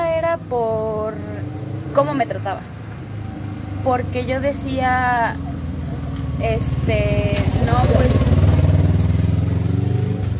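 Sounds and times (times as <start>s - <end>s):
motorcycle engine rumbling: 0.0s - 10.3s
speech: 2.0s - 2.8s, 3.8s - 5.5s, 6.4s - 8.1s.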